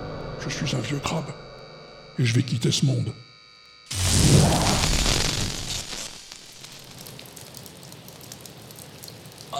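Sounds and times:
speech: 0:00.4 - 0:01.5, 0:02.2 - 0:03.3
rain falling: 0:03.9 - 0:09.5.

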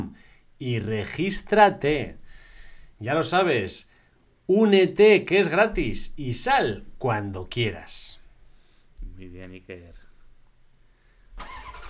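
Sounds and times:
speech: 0:00.0 - 0:02.2, 0:03.0 - 0:03.9, 0:04.5 - 0:08.2, 0:09.2 - 0:10.0, 0:11.4 - 0:11.8
car engine starting: 0:11.4 - 0:11.8.

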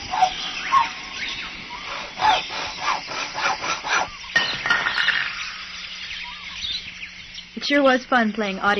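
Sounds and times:
saw rasping in imitation of a jungle bird call: 0:00.0 - 0:04.6
speech: 0:07.7 - 0:08.7.

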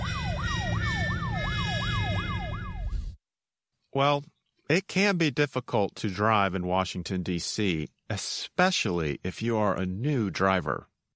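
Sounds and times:
police car siren wailing in Washington D.C.: 0:00.0 - 0:03.2
speech: 0:04.0 - 0:10.9.

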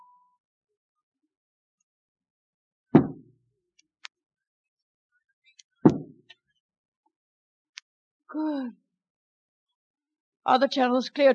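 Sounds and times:
hollow knocks on wood: 0:03.0 - 0:03.2, 0:05.9 - 0:06.2
speech: 0:08.3 - 0:08.8, 0:10.4 - 0:11.3.

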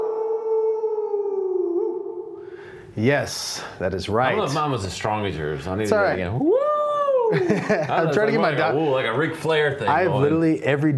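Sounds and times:
person imitating a wolf howl: 0:00.0 - 0:02.4, 0:06.4 - 0:07.4
speech: 0:03.0 - 0:06.6, 0:07.3 - 0:10.9
laughter: 0:07.3 - 0:09.0.

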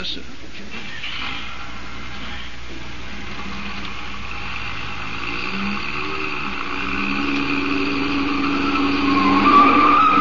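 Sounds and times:
speech: 0:00.0 - 0:01.7
chauffeur-driven car engine roaring: 0:00.6 - 0:10.2
car tires squealing while cornering fast: 0:00.8 - 0:10.2.

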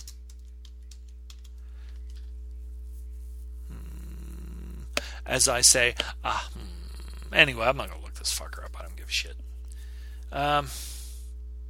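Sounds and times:
typing on a computer keyboard: 0:00.0 - 0:02.2
constant low electrical hum: 0:00.0 - 0:11.6
speech: 0:05.3 - 0:06.6, 0:07.3 - 0:09.5, 0:10.3 - 0:10.9.

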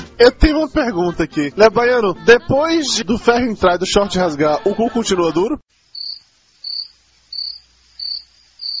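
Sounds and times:
speech: 0:00.2 - 0:05.8
cricket chirping high trilling: 0:05.7 - 0:08.7.

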